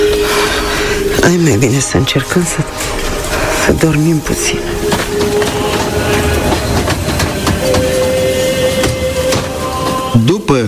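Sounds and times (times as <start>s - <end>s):
thin metallic squeal: 0.0s - 10.5s
train rolling along the rails rumble: 0.0s - 10.6s
speech: 1.2s - 4.9s
train wheels clacking on rails: 2.4s - 10.5s.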